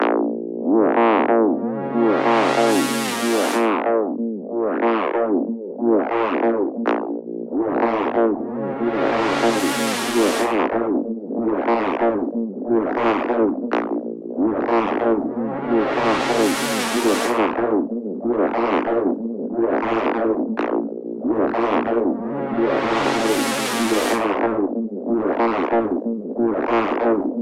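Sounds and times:
wet wobble synth: 0:00.0 - 0:27.4.

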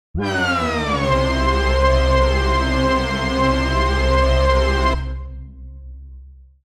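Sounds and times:
hoover synth lead: 0:00.2 - 0:06.3.

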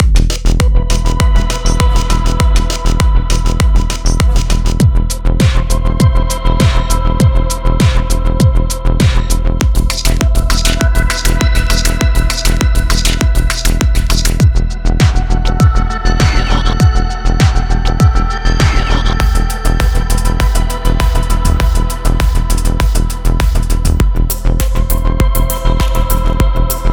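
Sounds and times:
electronic drum loops: 0:00.0 - 0:26.9.

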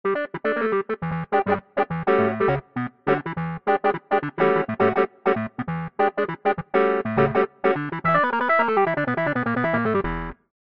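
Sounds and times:
clavi-synth: 0:00.1 - 0:10.1.

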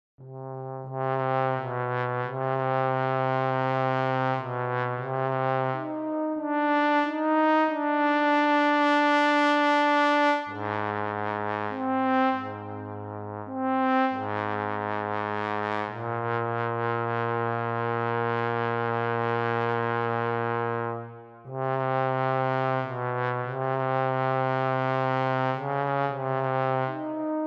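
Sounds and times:
brass trombone: 0:00.2 - 0:27.4.

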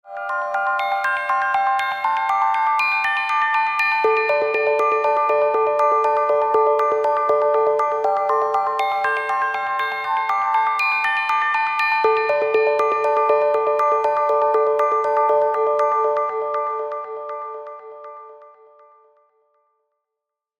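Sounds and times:
Tibetan bells: 0:00.1 - 0:18.5.

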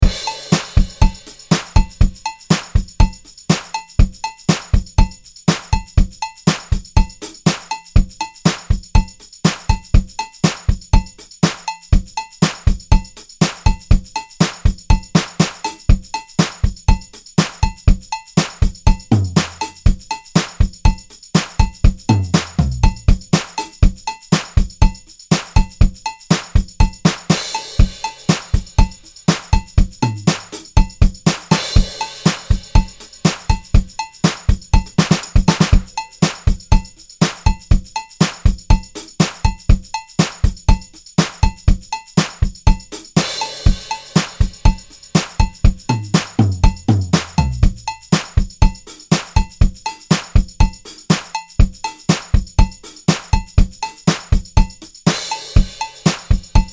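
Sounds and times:
vintage disco drum kit: 0:00.0 - 0:56.7.

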